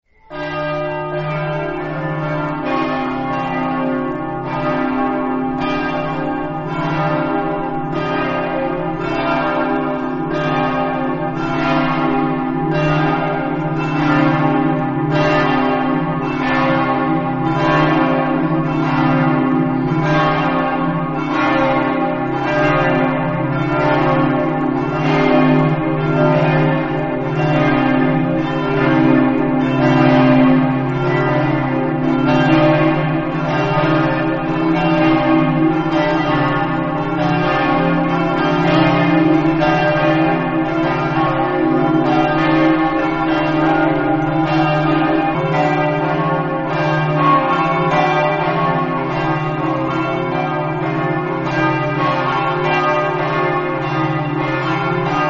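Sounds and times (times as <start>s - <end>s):
church bells ringing in Cividale: 0.1s - 55.2s.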